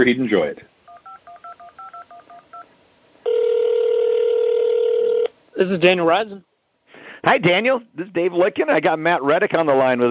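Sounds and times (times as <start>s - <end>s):
speech: 0.0s - 0.7s, 5.6s - 6.5s, 7.2s - 10.1s
steady telephone ring tone: 0.9s - 2.6s, 3.2s - 5.3s
touch-tone telephone dialing beeps: 0.9s - 2.6s.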